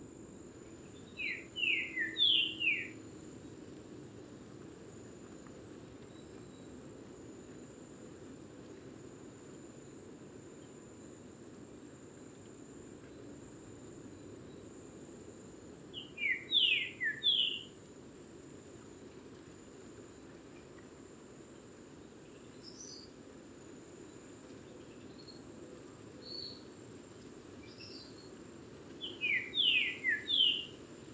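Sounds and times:
saltator singing whistled phrases: 0:01.1 - 0:03.0, 0:15.9 - 0:17.7, 0:29.0 - 0:30.8.

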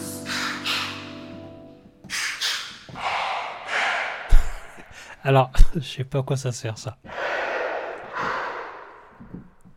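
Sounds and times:
heavy mechanical respirator-like breathing: 0:00.3 - 0:01.2, 0:02.1 - 0:05.2, 0:08.1 - 0:09.0
speech: 0:05.2 - 0:07.1.

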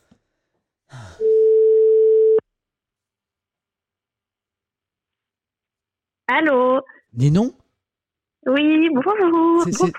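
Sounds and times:
telephone tone while placing a call: 0:01.2 - 0:02.4
speech: 0:06.3 - 0:07.6, 0:08.5 - 0:09.9.

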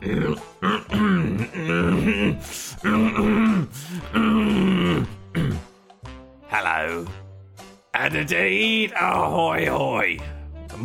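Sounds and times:
speech: 0:00.0 - 0:01.1, 0:08.1 - 0:10.8
man clearing his throat: 0:00.6 - 0:05.7
short breaths and hisses: 0:03.6 - 0:05.7.

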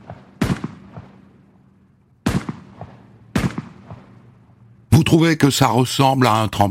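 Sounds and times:
rifle gunshots fired by gendarmes: 0:00.0 - 0:04.6
speech: 0:05.0 - 0:06.6.

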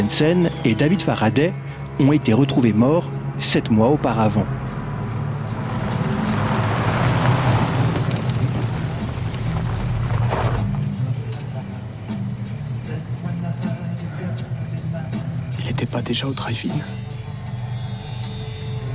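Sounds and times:
speech: 0:00.0 - 0:04.7, 0:16.1 - 0:17.1
Ford Falcon 1958 or 1959 model engine rumbling as car rolls into parking lot: 0:02.6 - 0:15.7.

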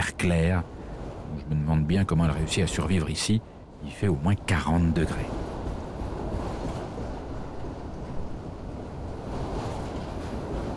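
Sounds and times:
freight train hauling ore wagons rumbling along tracks through a dry flat rocky landscape: 0:00.0 - 0:10.7
speech: 0:00.1 - 0:05.5.

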